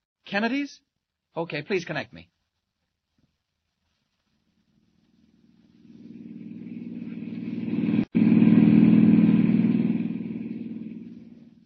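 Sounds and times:
speech: 0.3 - 2.3
hired car engine driving away on a dusty road: 4.8 - 11.6.

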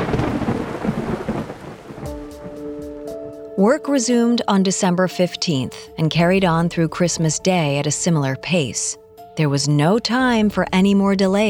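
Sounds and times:
heavy rain: 0.0 - 2.6
deep thunder rumbling: 0.0 - 3.1, 10.1 - 11.4
faint sustained musical tone with soft pulsing beats: 2.1 - 11.4
speech: 3.6 - 11.4.

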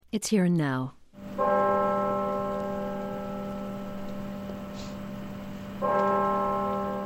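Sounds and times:
speech: 0.1 - 1.6
large cemetery bell tolling: 1.2 - 7.0.

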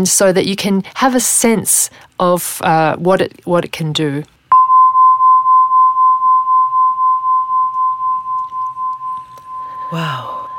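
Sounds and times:
speech: 0.0 - 4.3, 9.9 - 10.3
crystal harp note pulsing after a sharp strike: 4.6 - 10.5.

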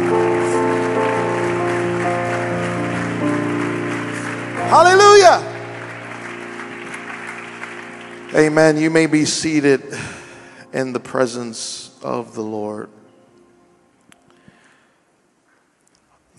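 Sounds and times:
audience clapping continuously: 0.0 - 9.7
sustained organ-like chord: 0.0 - 14.8
speech: 4.8 - 5.5, 8.4 - 13.0.

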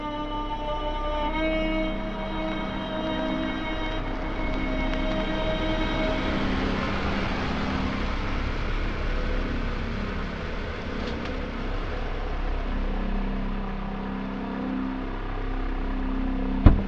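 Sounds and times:
car engine idling in a cemetery at night: 0.1 - 16.8
sharp knock: 16.7 - 16.8.

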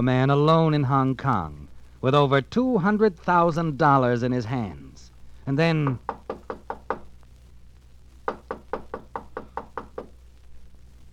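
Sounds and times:
speech: 0.0 - 4.8, 5.5 - 6.2
firm knocking on a door: 5.9 - 7.1, 8.3 - 10.2.

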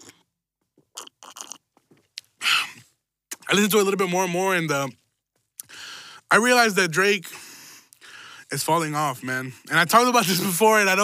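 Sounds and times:
wet mouth clicks and gulps: 0.0 - 2.4
person sipping a drink: 0.0 - 2.8
slurping: 0.0 - 2.8
speech: 3.5 - 5.0, 6.3 - 7.4, 8.5 - 11.0.

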